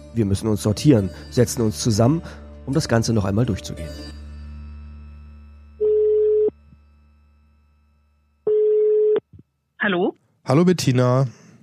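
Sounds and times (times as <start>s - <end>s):
speech: 0.2s - 4.2s, 9.9s - 11.4s
ringback tones of an outgoing phone call: 5.8s - 6.6s, 8.5s - 9.2s.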